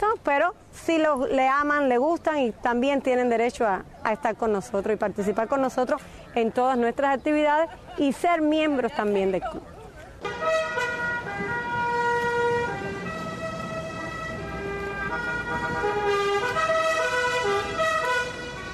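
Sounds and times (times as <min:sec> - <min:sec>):
traffic rumbling in Havana: 0:00.0 - 0:18.7
speech: 0:00.2 - 0:09.7
car horns blaring in a car club procession: 0:10.2 - 0:18.7.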